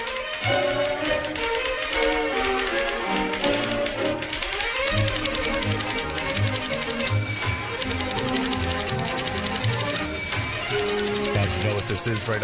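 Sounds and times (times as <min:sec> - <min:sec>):
typewriter keys clattering: 0:00.0 - 0:12.4
lively full orchestra playing: 0:00.4 - 0:12.4
speech: 0:11.9 - 0:12.4.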